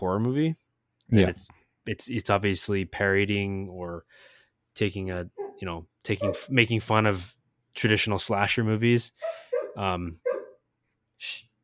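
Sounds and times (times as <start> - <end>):
speech: 0.0 - 10.3, 11.2 - 11.5
dogs barking in the background: 5.3 - 5.6, 6.2 - 6.6, 9.2 - 10.6
breathy huff: 9.2 - 9.7.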